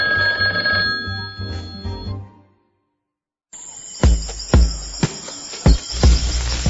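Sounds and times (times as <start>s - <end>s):
telephone ringing with a trilling electronic tone: 0.0s - 2.2s, 3.6s - 6.6s
rhythmic thumps: 3.9s - 6.6s.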